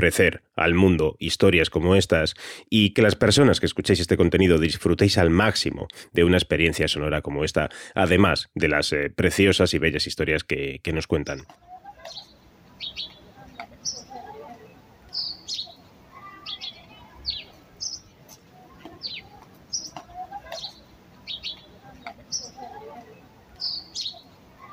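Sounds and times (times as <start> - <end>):
speech: 0.0 - 13.1
birds singing in garden trees: 12.0 - 14.2, 15.1 - 18.1, 18.9 - 22.7, 23.5 - 24.7.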